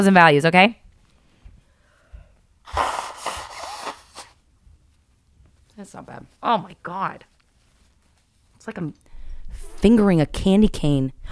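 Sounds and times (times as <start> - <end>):
speech: 0.0 - 0.8, 5.8 - 7.3, 8.6 - 9.0, 9.6 - 11.2
person blowing nose: 2.6 - 4.4.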